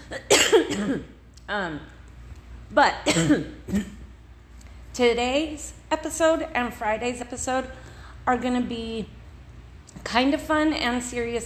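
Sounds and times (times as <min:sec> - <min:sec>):
harsh cough trailing into a rough throaty rasp: 0:00.1 - 0:01.1, 0:03.1 - 0:04.0
speech: 0:00.1 - 0:02.0, 0:02.7 - 0:04.0, 0:05.0 - 0:09.2, 0:10.0 - 0:11.4.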